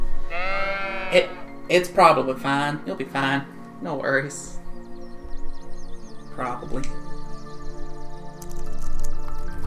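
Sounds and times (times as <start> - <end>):
sheep bleating: 0.3 - 1.6
speech: 1.1 - 4.6, 6.4 - 7.0.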